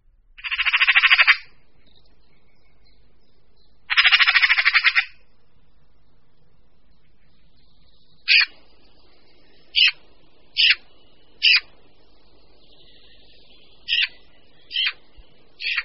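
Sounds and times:
Eurasian magpie rasping chattering call: 0.4s - 1.5s, 3.9s - 5.2s, 8.3s - 8.5s, 9.8s - 10.0s, 13.9s - 15.0s, 15.6s - 15.8s.

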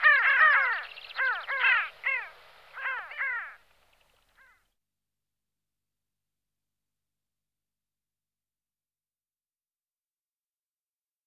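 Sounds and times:
pin-tailed sandgrouse Pterocles alchata giving harsh down-slurred notes: 0.0s - 3.6s.

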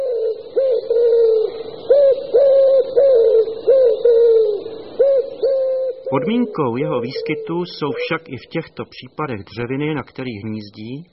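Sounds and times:
male common wood pigeon cooing: 0.0s - 8.3s
faint steady high hiss: 0.0s - 11.1s
speech: 6.1s - 11.1s.

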